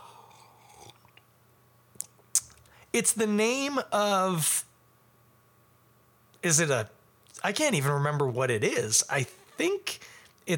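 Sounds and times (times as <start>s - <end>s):
swallow: 0.0s - 1.2s
person sipping beer: 0.0s - 1.3s
speech: 2.9s - 4.7s, 6.4s - 10.5s.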